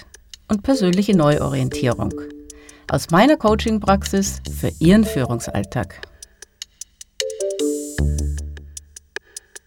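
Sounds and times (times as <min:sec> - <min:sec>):
speech: 0:00.5 - 0:06.1
smartphone electronic alarm melody: 0:00.7 - 0:02.8, 0:04.9 - 0:05.8, 0:07.2 - 0:08.6.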